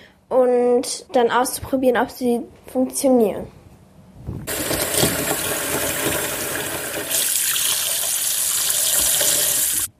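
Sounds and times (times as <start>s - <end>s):
speech: 0.8s - 3.6s
water running from a tap into a bathroom sink: 4.5s - 9.9s.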